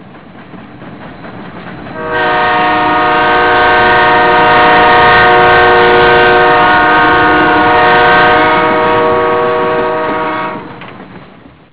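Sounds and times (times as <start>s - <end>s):
train: 0.0s - 11.7s.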